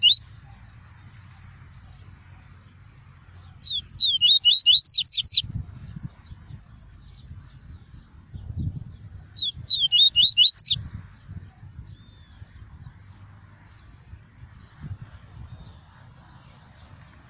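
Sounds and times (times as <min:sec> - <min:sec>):
Double-collared seedeater song of slurred swooping whistles: 0:00.0 - 0:00.2, 0:03.6 - 0:05.4, 0:09.4 - 0:10.8.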